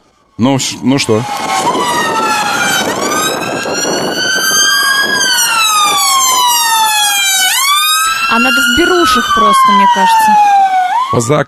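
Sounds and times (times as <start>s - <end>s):
emergency vehicle siren wailing: 0.0s - 11.4s
speech: 0.4s - 3.0s, 8.4s - 10.5s, 11.1s - 11.4s.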